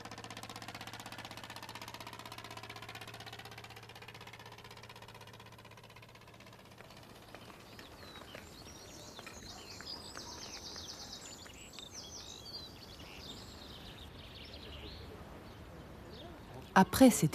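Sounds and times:
tractor engine running while driving out to meet sheep: 0:00.0 - 0:17.3
faint bird chirps: 0:07.2 - 0:17.3
speech: 0:16.8 - 0:17.3.

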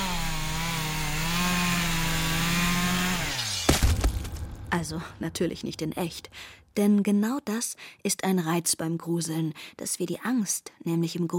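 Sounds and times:
chainsaw engine droning: 0:00.0 - 0:03.8
chainsaw cutting and rattling: 0:00.0 - 0:05.3
speech: 0:04.8 - 0:11.3.

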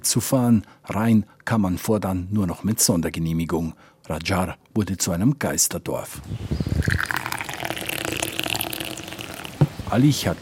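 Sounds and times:
speech: 0:00.0 - 0:07.2, 0:09.9 - 0:10.4
sweet tea pouring into a small cup: 0:06.8 - 0:09.7.

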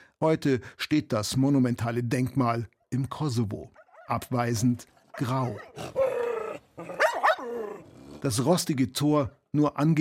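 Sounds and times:
speech: 0:00.2 - 0:06.0, 0:06.8 - 0:09.9
neglected stray dogs barking: 0:03.7 - 0:07.9
neglected stray dogs growling: 0:04.9 - 0:08.4.

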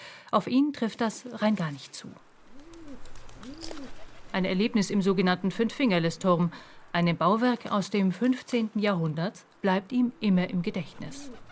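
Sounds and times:
speech: 0:00.3 - 0:02.3, 0:04.3 - 0:11.5
pigeons cooing: 0:02.4 - 0:05.9, 0:10.2 - 0:11.5.

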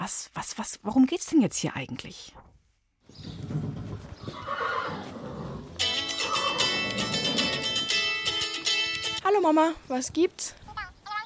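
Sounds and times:
speech: 0:00.0 - 0:02.4, 0:09.2 - 0:10.6
horse hooves clopping on a hard surface: 0:03.1 - 0:09.2
horse whinnying in a stable: 0:03.4 - 0:07.9.

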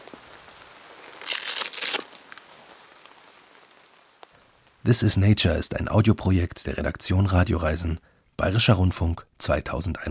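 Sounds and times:
rain pattering on a hard surface: 0:00.0 - 0:04.8
speech: 0:04.8 - 0:10.0.

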